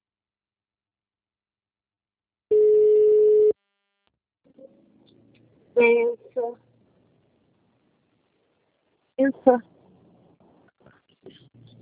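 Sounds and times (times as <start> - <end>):
mobile phone signal tone during a call: 2.5 - 3.6
speech: 5.8 - 6.7, 9.2 - 9.7.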